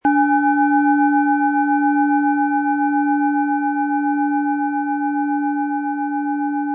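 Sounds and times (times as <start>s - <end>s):
Mars planetary singing bowl struck with mallet: 0.0s - 6.6s.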